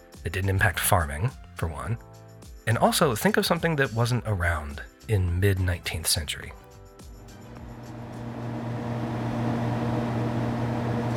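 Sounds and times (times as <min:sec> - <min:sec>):
speech: 0:00.2 - 0:06.6
air conditioner running: 0:07.3 - 0:11.1.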